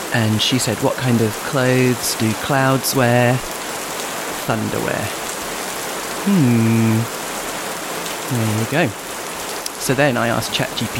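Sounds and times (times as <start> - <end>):
rain pattering on a surface: 0.0 - 10.9
speech: 0.1 - 3.6, 4.5 - 5.2, 6.2 - 7.2, 8.3 - 9.0, 9.8 - 10.9.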